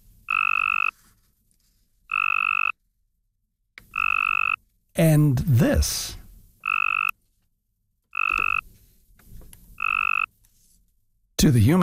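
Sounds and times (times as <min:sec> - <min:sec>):
Cope's gray tree frog mating call trills: 0:00.3 - 0:00.9, 0:02.1 - 0:02.8, 0:03.9 - 0:04.6, 0:06.6 - 0:07.1, 0:08.2 - 0:08.6, 0:09.8 - 0:10.3
speech: 0:05.0 - 0:06.2, 0:11.4 - 0:11.8.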